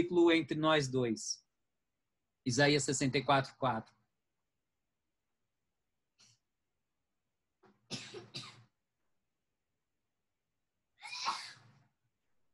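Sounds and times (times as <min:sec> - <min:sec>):
speech: 0:00.0 - 0:01.4, 0:02.4 - 0:04.0
person sneezing: 0:11.0 - 0:11.7.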